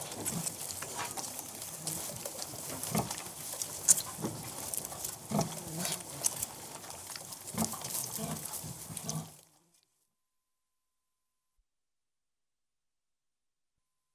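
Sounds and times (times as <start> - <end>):
domestic pig piglets suckling: 0.0 - 9.4
rustling: 0.0 - 9.6.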